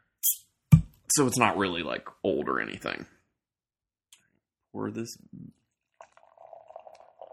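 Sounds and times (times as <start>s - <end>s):
speech: 1.2s - 3.2s, 4.7s - 5.6s
2018 vintage sour beer pouring into a glass: 5.6s - 7.3s.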